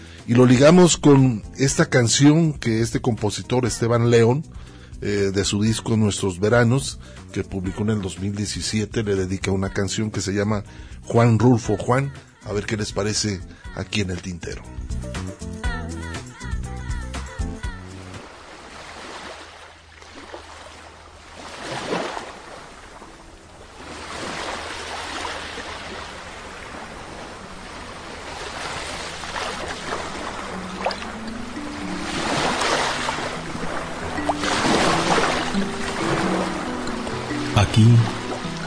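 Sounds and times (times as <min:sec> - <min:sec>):
speech: 0:00.3 - 0:15.2
sea waves lapping at the shore: 0:17.8 - 0:38.6
brief musical opening: 0:27.9 - 0:38.6.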